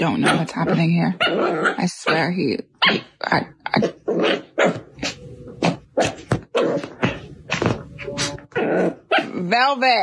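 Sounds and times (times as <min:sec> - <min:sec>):
Cavapoo dog grunting and whining: 0:00.0 - 0:02.2, 0:02.8 - 0:09.7
Cavapoo dog barking and yipping: 0:00.0 - 0:03.1, 0:03.8 - 0:05.2
speech: 0:00.0 - 0:04.8, 0:08.7 - 0:10.0.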